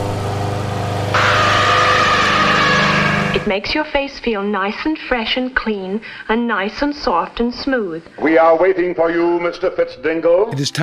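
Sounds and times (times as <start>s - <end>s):
lawn mower engine running: 0.0s - 3.5s
speech: 3.4s - 10.8s.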